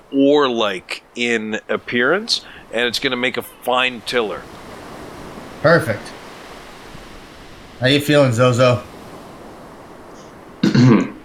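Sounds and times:
speech: 0:00.1 - 0:04.6, 0:05.6 - 0:06.2, 0:07.8 - 0:08.9
voice imitating someone coughing up water with a gurgling throaty sputter: 0:10.6 - 0:11.2.

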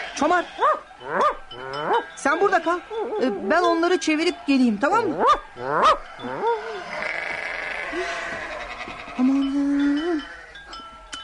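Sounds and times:
sheep bleating in a dervish lodge garden: 0:00.0 - 0:03.4, 0:05.4 - 0:09.6
speech: 0:00.2 - 0:07.2, 0:07.9 - 0:08.4.

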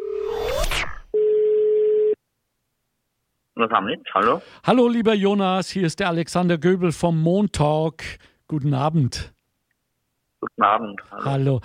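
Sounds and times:
single steady mid-pitched telephone tone: 0:00.0 - 0:00.3, 0:01.1 - 0:02.2
electronic telephone tones as a call is placed: 0:01.1 - 0:02.2
speech: 0:03.6 - 0:09.4, 0:10.5 - 0:11.6.

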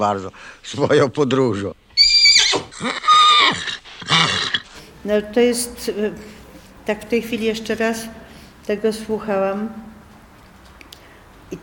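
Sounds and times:
speech: 0:00.0 - 0:02.2, 0:02.8 - 0:04.4, 0:05.0 - 0:09.9
stallion neighing: 0:02.0 - 0:04.8.

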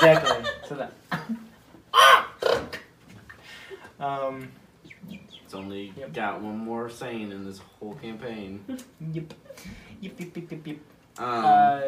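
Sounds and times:
speech: 0:00.0 - 0:01.0, 0:04.0 - 0:11.8
laughter: 0:00.0 - 0:01.4
voice imitating crow-like bird calls: 0:01.9 - 0:02.9, 0:04.8 - 0:05.5.

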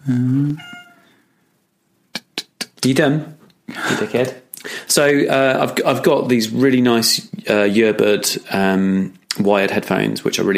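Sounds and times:
speech: 0:00.0 - 0:00.7, 0:02.8 - 0:10.5
female cat drawn-out meow: 0:00.6 - 0:01.1.

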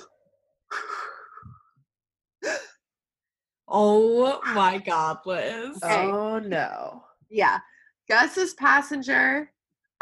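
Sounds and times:
heavy anxious breathing: 0:00.7 - 0:01.8
speech: 0:03.7 - 0:10.0.

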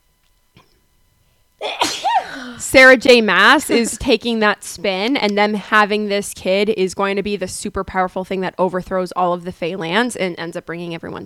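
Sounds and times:
sneeze: 0:01.6 - 0:02.6
speech: 0:02.7 - 0:11.2.

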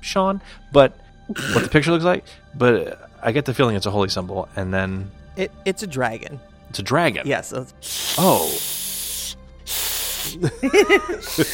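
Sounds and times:
speech: 0:00.0 - 0:08.8, 0:09.7 - 0:11.5
cat hissing: 0:07.8 - 0:10.5
laughter: 0:10.3 - 0:11.5.

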